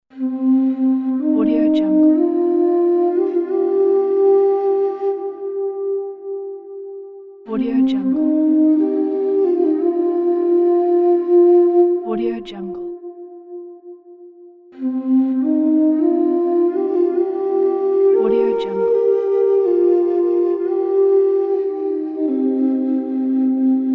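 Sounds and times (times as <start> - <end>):
soft sad Native American flute: 0.1 - 23.9.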